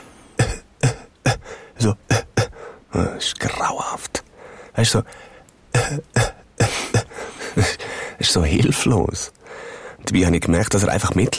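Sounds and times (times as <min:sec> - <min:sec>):
person imitating a man's quiet persistent cough: 0:00.4 - 0:01.4, 0:05.7 - 0:07.8
speech: 0:01.8 - 0:02.0, 0:03.2 - 0:04.2, 0:04.8 - 0:05.3, 0:05.9 - 0:06.3, 0:07.6 - 0:11.3.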